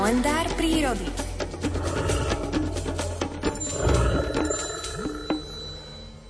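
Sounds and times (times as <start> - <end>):
speech: 0.1 - 1.3
brown bear growling: 1.6 - 6.1.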